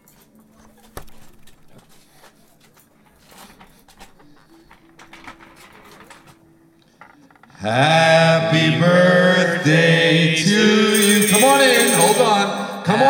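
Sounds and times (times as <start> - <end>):
speech: 7.6 - 10.9
tambourine being shaken: 10.8 - 13.0.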